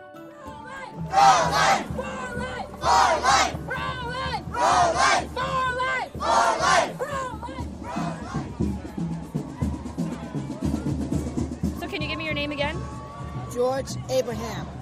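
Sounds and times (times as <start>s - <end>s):
murmur of voices: 0.4s - 14.8s
crowd chanting at a protest march: 0.6s - 9.1s
drumming: 0.9s - 14.8s
speech: 1.0s - 2.1s, 13.6s - 14.7s.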